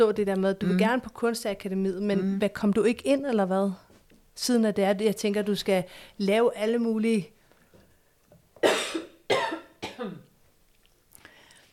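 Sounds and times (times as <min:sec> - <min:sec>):
speech: 0:00.0 - 0:03.8, 0:04.4 - 0:07.4
harsh coughs: 0:08.6 - 0:10.3.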